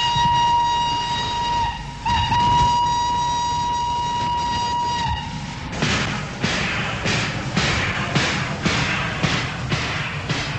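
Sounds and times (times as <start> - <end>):
train whistle on a branch line in Hungary: 0.0 - 5.6
rail wheels of a train rolling past on a branch line in Hungary: 0.0 - 10.5.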